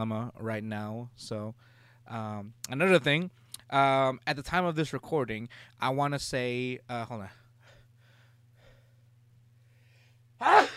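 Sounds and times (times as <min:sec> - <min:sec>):
speech: 0:00.0 - 0:07.4, 0:10.4 - 0:10.7
faint low hum: 0:00.0 - 0:10.7
sneeze: 0:10.4 - 0:10.7.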